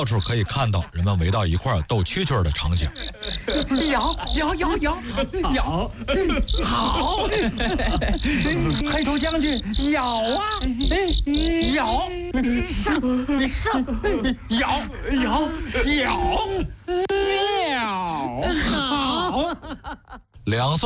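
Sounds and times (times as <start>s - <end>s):
person talking: 0.0s - 6.0s, 8.2s - 18.6s
crickets chirping: 0.0s - 16.9s
laughter: 0.0s - 17.1s, 18.4s - 20.4s.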